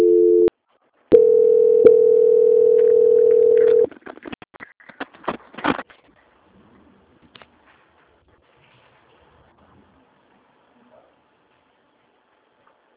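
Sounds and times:
telephone tone during a call transfer to a quality department: 0.0 - 0.5, 1.1 - 3.9.

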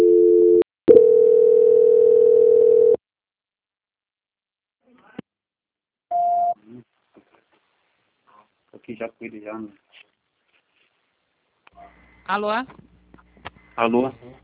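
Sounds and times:
telephone line tones while a call is being transferred: 0.0 - 3.0
speech: 8.9 - 10.1, 11.8 - 12.9, 13.8 - 14.4.

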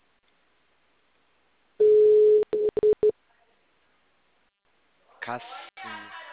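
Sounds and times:
telephone dial tone while placing a call: 1.8 - 3.1
speech: 5.3 - 6.2.

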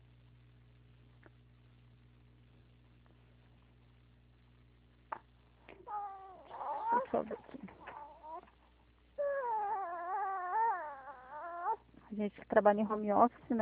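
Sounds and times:
four-month-old baby girl crying after vaccination at home: 5.8 - 8.5, 9.2 - 11.8
speech: 12.2 - 13.5.

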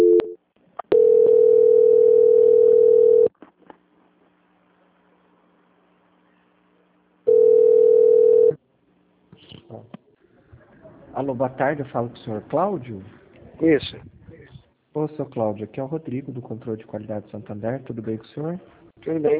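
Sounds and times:
telephone call transfer tones on the line: 0.0 - 3.3, 7.3 - 8.6
speech: 11.4 - 14.1, 15.0 - 19.3.

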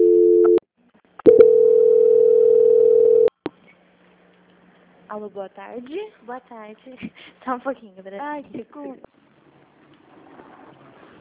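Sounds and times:
telephone line tone while a call is transferred: 0.0 - 0.6, 1.3 - 3.3
speech: 5.2 - 9.2.

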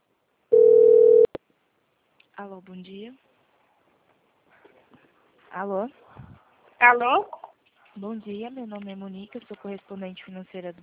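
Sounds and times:
telephone tone of an incoming call: 0.5 - 1.3
speech: 2.4 - 3.3, 5.5 - 7.4, 8.0 - 10.8.

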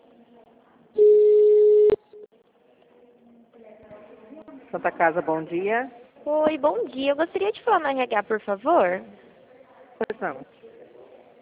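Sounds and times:
electronic telephone ringing tone during a call transfer: 1.0 - 2.1
short beep: 1.0 - 2.2
speech: 4.7 - 9.2, 10.2 - 10.6.

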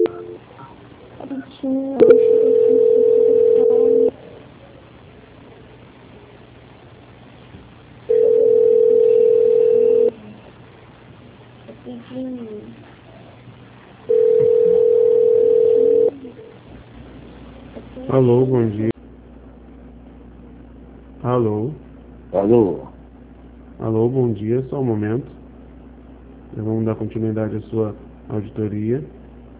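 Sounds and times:
telephone hold tones during a call transfer: 0.0 - 0.4, 2.0 - 4.1, 8.1 - 10.1, 14.1 - 16.1
faint low noise: 0.0 - 29.5
speech: 18.2 - 18.9, 22.5 - 22.8, 27.1 - 29.2.

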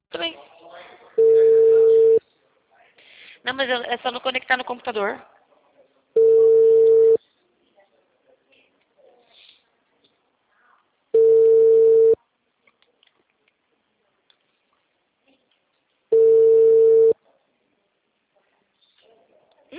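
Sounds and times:
telephone ringback tone from an accidentally placed call: 1.2 - 2.2, 6.2 - 7.2, 11.2 - 12.2, 16.1 - 17.2
speech: 3.5 - 5.4.

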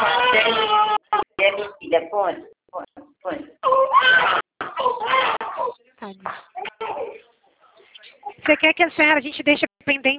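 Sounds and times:
small child crying: 0.0 - 1.3, 3.6 - 5.8
speech: 8.5 - 10.1.

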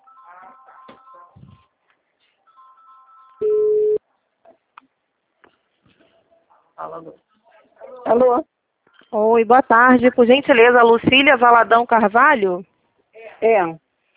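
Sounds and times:
ringback tone of an outgoing telephone call: 0.0 - 1.6, 2.5 - 4.0
speech: 6.8 - 7.3, 8.1 - 8.5, 9.1 - 12.7, 13.4 - 13.8.

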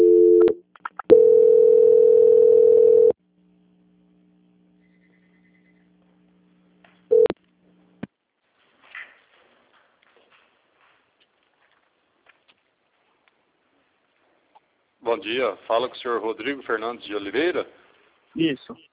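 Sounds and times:
telephone line tones as a call is transferred: 0.0 - 3.2, 7.1 - 7.4
speech: 15.2 - 17.8, 18.4 - 18.9.

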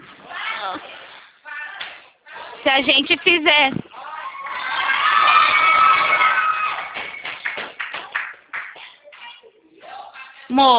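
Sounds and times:
speech: 2.6 - 3.8, 10.6 - 10.7
group of people cheering and shouting in an office: 3.9 - 7.3
people clapping: 4.4 - 9.4.

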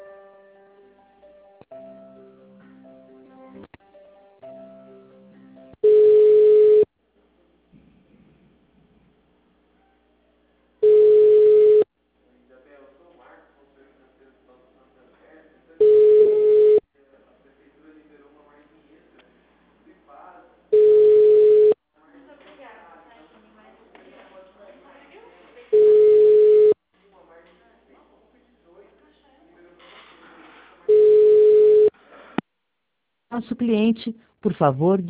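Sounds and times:
loud steady single-pitch telephone line beeps during a call transfer on a bank credit hotline: 5.8 - 6.9, 10.8 - 11.9, 15.8 - 16.8, 20.8 - 21.8, 25.8 - 26.8, 30.9 - 31.9
speech: 33.4 - 35.0.

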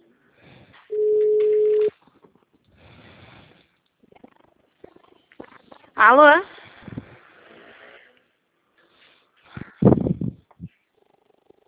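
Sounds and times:
faint scattered noise: 0.0 - 11.6
telephone ringback tone on an outgoing call: 0.9 - 1.9
speech: 6.0 - 6.5.

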